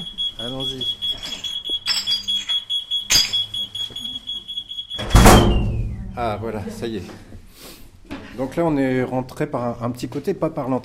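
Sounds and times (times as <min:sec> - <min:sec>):
door alarm beeping: 0:00.0 - 0:06.2
speech: 0:00.4 - 0:01.0, 0:06.2 - 0:07.3, 0:08.4 - 0:10.8.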